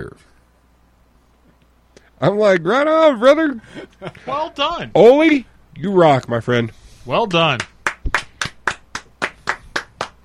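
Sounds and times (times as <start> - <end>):
speech: 0.0 - 0.4, 2.2 - 7.7
hand clapping: 7.5 - 10.2.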